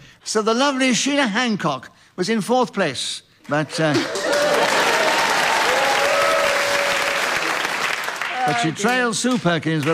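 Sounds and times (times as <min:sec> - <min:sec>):
speech: 0:00.3 - 0:04.2, 0:08.5 - 0:09.9
live audience applauding the winners of a game: 0:03.9 - 0:09.1
whistles and cheers: 0:04.6 - 0:07.6.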